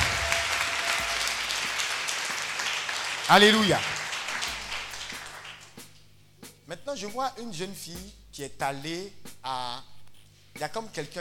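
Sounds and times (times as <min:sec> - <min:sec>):
church congregation clapping during a worship service: 0:00.0 - 0:06.0
speech: 0:03.3 - 0:03.9, 0:06.9 - 0:09.9, 0:10.6 - 0:11.1.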